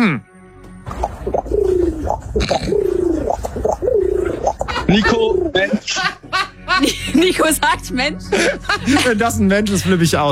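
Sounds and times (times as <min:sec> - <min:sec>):
speech: 0:00.0 - 0:00.3, 0:02.4 - 0:02.8, 0:04.9 - 0:10.3
person imitating pigeon cooing: 0:01.6 - 0:05.6
laughter: 0:04.6 - 0:09.9.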